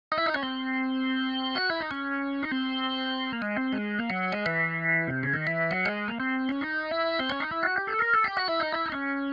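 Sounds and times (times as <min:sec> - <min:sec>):
organ solo: 0:00.1 - 0:09.3.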